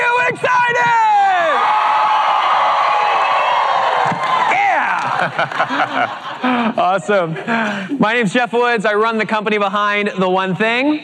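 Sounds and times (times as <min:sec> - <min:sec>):
large live audience cheering and whooping: 0:01.0 - 0:06.4
laughter: 0:03.9 - 0:08.1
speech: 0:05.3 - 0:11.0.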